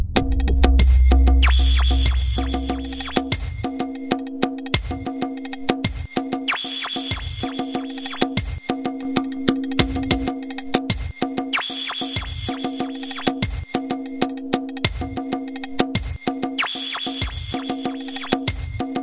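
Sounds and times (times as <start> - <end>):
ethnic drum and bass clanger: 0.2 - 19.0.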